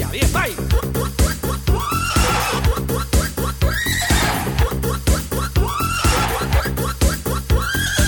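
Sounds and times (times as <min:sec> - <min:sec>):
fast rhythmic pounding: 0:00.0 - 0:08.0
horse whinnying: 0:01.7 - 0:02.7, 0:03.6 - 0:04.7, 0:05.6 - 0:06.8.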